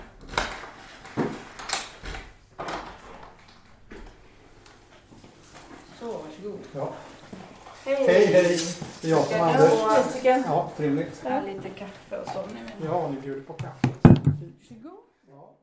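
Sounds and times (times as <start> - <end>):
door opening: 0.0 - 4.2
speech: 6.7 - 7.1, 7.9 - 14.0
knocking on a door: 13.6 - 14.5.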